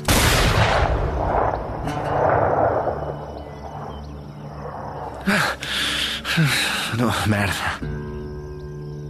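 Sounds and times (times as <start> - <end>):
pistol shot fired outdoors in the cold at a shooting game: 0.0 - 3.1
speech: 6.4 - 8.0.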